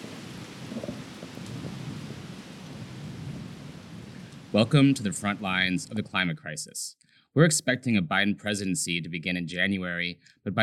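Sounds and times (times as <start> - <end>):
heavy rain outside a front door in New Orleans Louisiana: 0.0 - 6.0
hurricane winds outside a front door in New Orleans Louisiana: 0.0 - 6.2
speech: 4.5 - 10.6.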